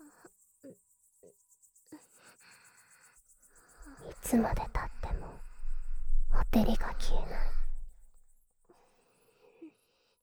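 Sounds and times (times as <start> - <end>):
insects chirping in a rapid pulsing trill at night: 3.8 - 8.2
speech: 3.9 - 4.8, 6.5 - 7.6.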